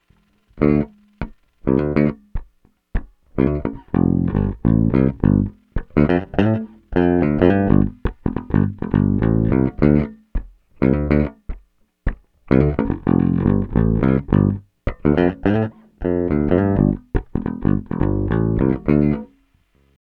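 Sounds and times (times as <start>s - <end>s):
guitar bridge pickup tone: 0.0s - 19.4s.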